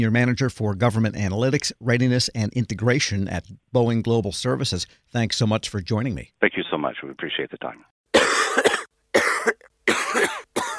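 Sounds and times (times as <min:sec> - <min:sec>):
speech: 0:00.0 - 0:08.0
person coughing chesty and forceful: 0:08.1 - 0:10.7.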